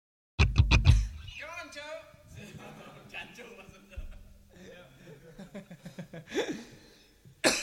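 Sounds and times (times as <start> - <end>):
speech: 4.6 - 6.8
laughter: 5.0 - 6.8
breathy rhythmic vocal huffs: 6.3 - 7.2
sharp loud cough: 7.4 - 7.6.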